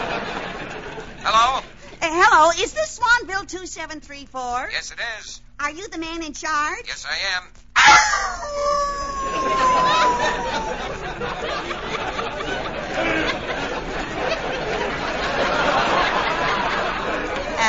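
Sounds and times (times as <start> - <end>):
laughter: 0.0 - 1.6, 7.8 - 17.6
speech: 1.2 - 11.9
wolf howling: 7.8 - 11.0.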